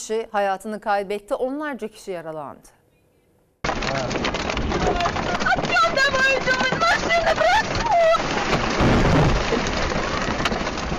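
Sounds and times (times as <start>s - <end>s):
speech: 0.0s - 2.8s, 5.8s - 8.5s
heavy rain in a storm at a lake in the Volga region: 3.7s - 10.9s
low thunder rumble in a storm at a lake in the Volga region: 3.7s - 10.9s.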